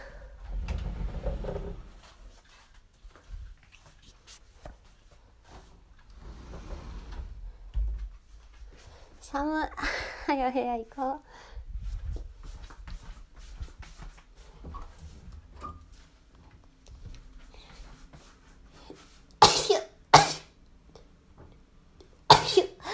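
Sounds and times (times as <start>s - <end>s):
quiet shuffling: 0.4s - 9.4s, 11.7s - 19.4s
speech: 9.3s - 11.5s
child sneezing: 19.4s - 20.6s, 22.3s - 22.8s.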